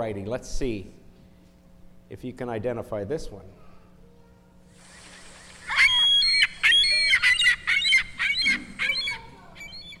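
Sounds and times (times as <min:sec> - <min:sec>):
speech: 0:00.0 - 0:01.0, 0:02.1 - 0:03.6
seagull squawking: 0:04.9 - 0:09.9.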